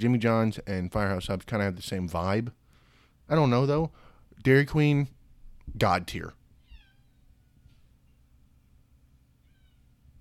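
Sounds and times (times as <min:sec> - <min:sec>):
speech: 0:00.0 - 0:02.6, 0:03.3 - 0:06.4
cat meowing: 0:06.6 - 0:07.7, 0:09.4 - 0:09.9.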